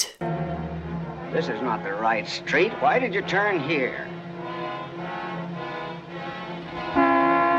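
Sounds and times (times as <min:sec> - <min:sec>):
speech: 0:01.4 - 0:04.2
car horn honking: 0:06.9 - 0:07.5.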